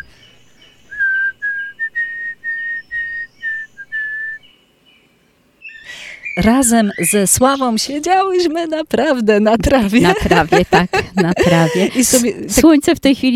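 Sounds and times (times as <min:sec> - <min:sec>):
painter whistling a short tune at the easel: 0:00.9 - 0:04.4
speech: 0:06.4 - 0:13.3
laughter: 0:09.8 - 0:12.4.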